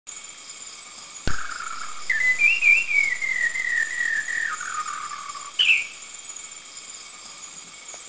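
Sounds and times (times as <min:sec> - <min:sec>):
White-browed Shama in Subic Philippines: 0:01.3 - 0:06.5.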